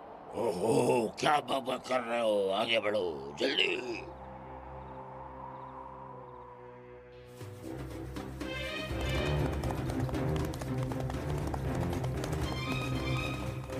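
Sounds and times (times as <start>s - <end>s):
speech: 0.3s - 4.2s
horse hooves galloping: 7.6s - 13.7s.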